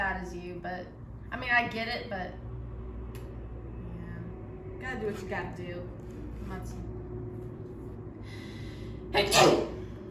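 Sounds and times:
low hum: 0:00.0 - 0:10.0
speech: 0:00.4 - 0:02.5, 0:04.8 - 0:06.9, 0:09.1 - 0:09.8
person sneezing: 0:09.2 - 0:09.8.

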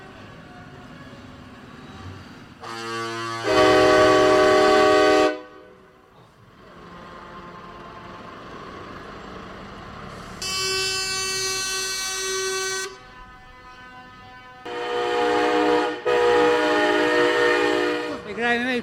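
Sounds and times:
rumble of engines and traffic: 0:00.0 - 0:18.8
heavy truck convoy horns blasting in the Netherlands: 0:02.6 - 0:05.9, 0:06.7 - 0:08.4, 0:10.3 - 0:18.5.

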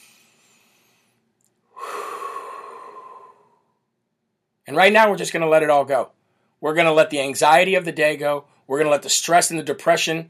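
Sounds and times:
deep breath in through the nose and out through the mouth: 0:00.0 - 0:04.0
speech: 0:04.7 - 0:10.2.

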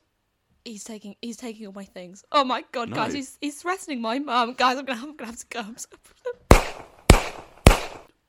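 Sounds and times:
speech: 0:00.7 - 0:06.4
sharp loud bangs: 0:06.5 - 0:08.1.

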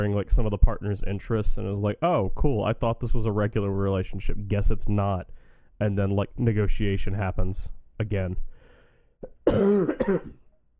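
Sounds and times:
speech: 0:00.0 - 0:08.5, 0:09.2 - 0:10.4
raspy throaty cough: 0:09.2 - 0:10.5.

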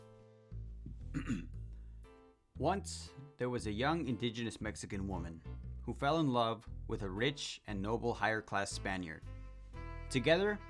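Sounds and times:
person clearing throat: 0:00.9 - 0:01.6
speech: 0:01.2 - 0:01.6, 0:02.6 - 0:09.3, 0:10.1 - 0:10.6.

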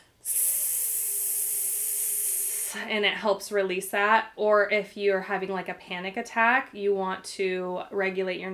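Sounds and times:
long hissing breath exhaled in breathwork for releasing anger: 0:00.0 - 0:02.9
speech: 0:02.7 - 0:08.5.

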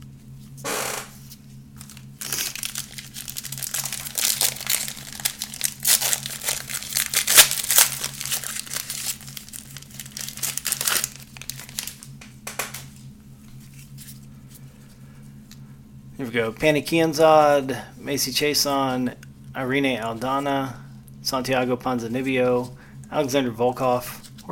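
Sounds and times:
steady low hum: 0:00.0 - 0:24.5
trading card pack foil wrapper being ripped open: 0:01.8 - 0:14.3
speech: 0:16.4 - 0:24.5.

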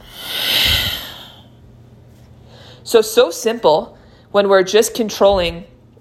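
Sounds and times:
deep exhale during a breathing exercise: 0:00.0 - 0:01.6
speech: 0:02.9 - 0:05.7.

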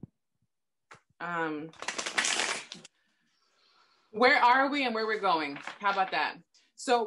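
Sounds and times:
speech: 0:01.2 - 0:02.0, 0:04.1 - 0:07.0
tarot cards being shuffled: 0:01.8 - 0:02.9.

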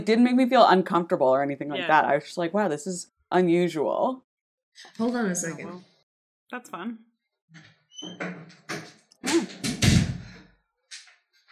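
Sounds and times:
speech: 0:00.0 - 0:05.9, 0:06.5 - 0:09.7
door slamming in a house: 0:08.0 - 0:10.4
bumps and knocks: 0:08.2 - 0:10.3.

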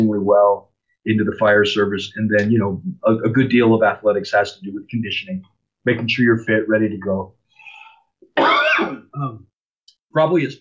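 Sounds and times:
speech: 0:00.0 - 0:07.4, 0:08.4 - 0:09.5, 0:10.1 - 0:10.5
loud harsh cough or throat-clearing: 0:08.3 - 0:09.3.

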